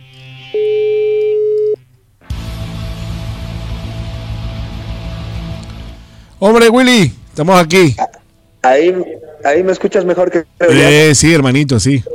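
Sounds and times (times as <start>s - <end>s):
telephone call tone while redialing: 0.5s - 1.8s
continuous telephone line hiss and static: 5.0s - 12.1s
speech: 6.4s - 12.1s.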